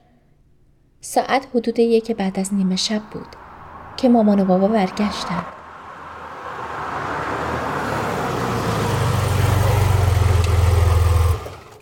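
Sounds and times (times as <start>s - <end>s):
speech: 1.0s - 3.4s, 4.0s - 5.6s
car engine idling: 2.2s - 11.8s.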